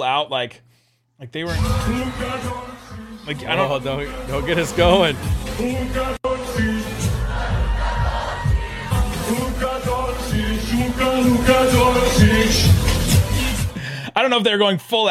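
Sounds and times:
speech: 0:00.0 - 0:06.7, 0:14.2 - 0:15.0
large arena crowd at a basketball game of Slovenia roaring and chanting: 0:01.5 - 0:13.0.

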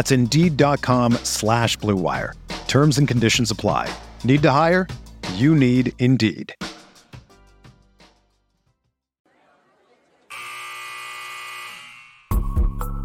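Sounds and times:
speech: 0:00.0 - 0:06.7
basketball final buzzer blaring: 0:10.3 - 0:12.4.

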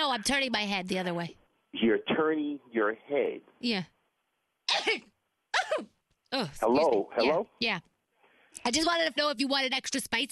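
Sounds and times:
speech: 0:00.2 - 0:04.0, 0:04.8 - 0:07.9, 0:08.6 - 0:10.3
harsh raspy coughs: 0:04.7 - 0:05.9.

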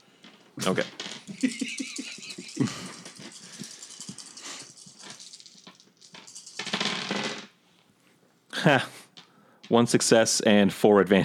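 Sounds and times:
speech: 0:00.6 - 0:01.8, 0:08.6 - 0:09.0, 0:09.7 - 0:11.2
five dice rolling on a hard tabletop: 0:00.6 - 0:07.6
laughter: 0:01.3 - 0:03.4.

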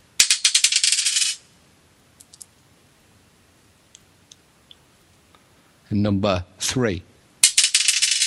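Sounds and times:
die thrown in a prize draw clattering on a hard surface: 0:00.2 - 0:01.4, 0:02.2 - 0:02.5, 0:07.4 - 0:08.2
speech: 0:05.9 - 0:07.1.

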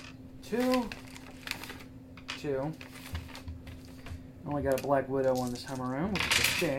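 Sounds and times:
speech: 0:00.5 - 0:01.0, 0:02.4 - 0:03.0, 0:04.4 - 0:06.7
small plastic dice clattering on a hard surface: 0:04.7 - 0:06.7.

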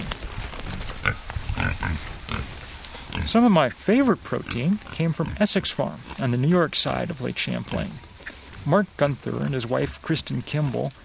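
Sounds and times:
pig snorting and grunting: 0:01.0 - 0:02.5, 0:03.1 - 0:03.7, 0:04.3 - 0:08.4, 0:10.6 - 0:11.0
speech: 0:03.3 - 0:11.0.

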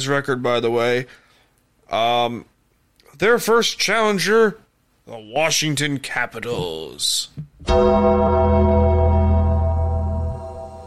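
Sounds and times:
speech: 0:00.0 - 0:01.2, 0:01.9 - 0:02.5, 0:03.2 - 0:08.8
deep bell toll with resonant hum: 0:07.6 - 0:10.8.

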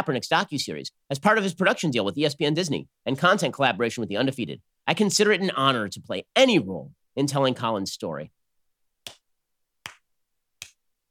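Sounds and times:
speech: 0:00.0 - 0:08.4
slow hand clapping: 0:09.1 - 0:10.8.

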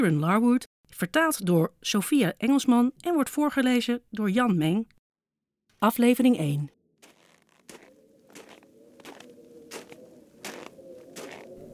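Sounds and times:
speech: 0:00.0 - 0:05.0, 0:05.8 - 0:06.8
heavy footsteps crunching through deep snow: 0:07.0 - 0:11.7.

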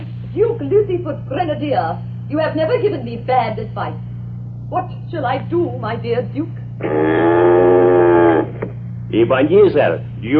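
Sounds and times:
speech: 0:00.4 - 0:04.1, 0:04.7 - 0:07.8, 0:09.1 - 0:10.3
cow mooing with a long low bellow: 0:06.8 - 0:08.6.

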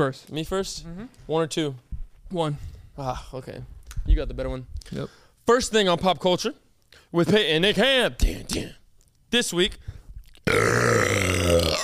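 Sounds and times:
speech: 0:00.0 - 0:11.2
loud drawn-out burp: 0:10.4 - 0:11.8.

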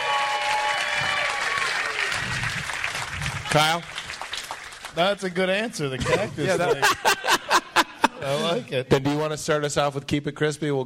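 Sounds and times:
live audience clapping and cheering: 0:00.0 - 0:05.7
speech: 0:03.5 - 0:04.0, 0:05.0 - 0:07.6, 0:08.2 - 0:10.8
laughter: 0:06.0 - 0:09.2.

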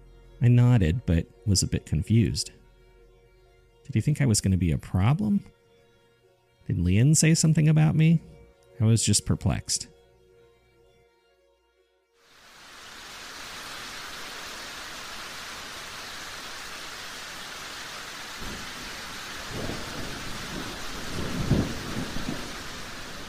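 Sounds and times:
speech: 0:00.4 - 0:02.6, 0:03.9 - 0:05.6, 0:06.7 - 0:10.0
steady dense rain: 0:12.3 - 0:23.2
low rumbles of thunder: 0:17.8 - 0:23.2.

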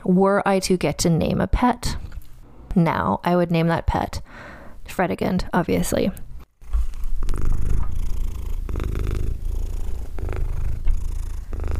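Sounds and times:
speech: 0:00.1 - 0:02.1, 0:02.8 - 0:06.3
female pet cat purring: 0:06.5 - 0:11.7.

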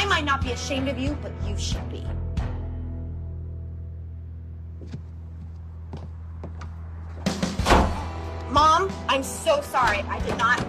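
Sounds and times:
speech: 0:00.1 - 0:02.2, 0:08.8 - 0:10.6
door being shut: 0:07.5 - 0:08.1.

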